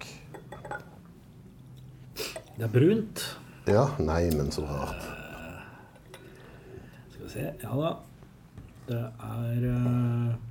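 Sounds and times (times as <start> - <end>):
glass clinking against glass: 0.3 - 1.1
speech: 2.6 - 5.2, 7.3 - 8.1, 8.9 - 10.4.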